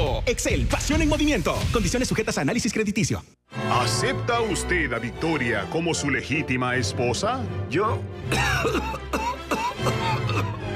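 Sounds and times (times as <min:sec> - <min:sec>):
speech: 0:00.3 - 0:10.6
person coughing in a coughing fit: 0:08.3 - 0:10.7.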